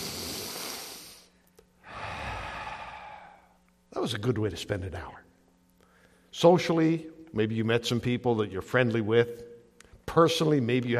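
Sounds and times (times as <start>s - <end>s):
slow deep breath taken during a church gathering: 0.0s - 3.6s
speech: 4.0s - 5.3s, 6.4s - 9.5s, 10.1s - 10.9s.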